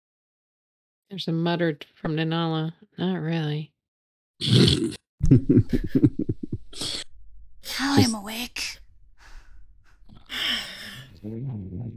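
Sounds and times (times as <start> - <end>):
speech: 1.1 - 3.7, 4.4 - 6.2, 7.7 - 8.8, 10.3 - 11.9
voice imitating snoring: 4.4 - 5.0
laughter: 5.2 - 6.7.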